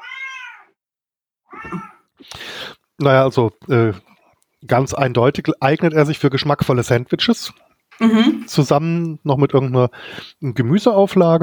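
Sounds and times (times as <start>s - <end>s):
cat meowing: 0.0s - 0.8s, 1.5s - 2.1s
speech: 1.5s - 2.4s, 3.0s - 11.4s.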